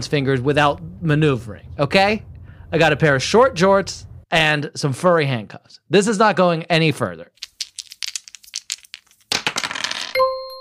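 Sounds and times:
speech: 0:00.0 - 0:07.5
dice being rolled and clattering: 0:07.4 - 0:10.2
bright sustained chime: 0:10.2 - 0:10.5.

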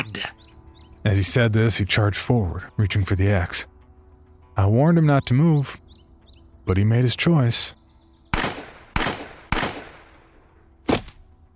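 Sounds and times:
speech: 0:01.0 - 0:03.7, 0:04.6 - 0:05.8, 0:06.7 - 0:07.8
gunshots from a handheld gun: 0:08.3 - 0:10.2.

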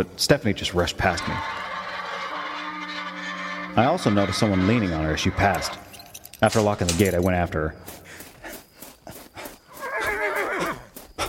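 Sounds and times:
speech: 0:00.0 - 0:01.7, 0:03.8 - 0:05.8, 0:06.4 - 0:08.0
horse hoof clops on a hard surface: 0:00.7 - 0:11.2
horse whinnying with a wavering trembling pitch: 0:01.0 - 0:06.2, 0:09.8 - 0:10.9.

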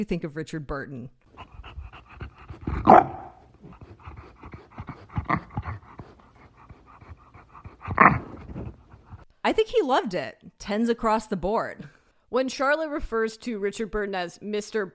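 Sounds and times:
speech: 0:00.0 - 0:01.5, 0:02.8 - 0:03.2, 0:09.5 - 0:14.9
bulldog panting heavily: 0:01.3 - 0:09.3.

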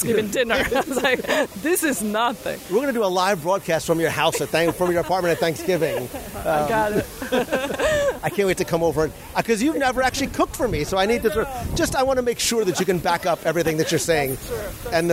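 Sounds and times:
person laughing: 0:00.0 - 0:01.7, 0:04.1 - 0:08.7
falling water of an outdoor fountain: 0:00.0 - 0:15.1
speech: 0:00.0 - 0:15.1.

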